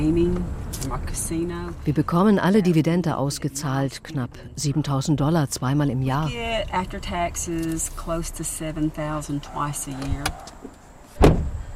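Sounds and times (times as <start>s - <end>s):
speech: 0.0s - 11.5s
faint road rumble: 0.0s - 11.7s
low car engine hum: 0.0s - 11.7s
single sharp thump: 11.2s - 11.6s.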